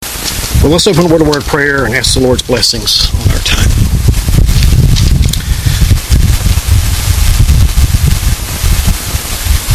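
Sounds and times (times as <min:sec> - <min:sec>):
gusty wind buffeting a microphone outdoors: 0:00.0 - 0:09.7
speech: 0:00.6 - 0:03.8.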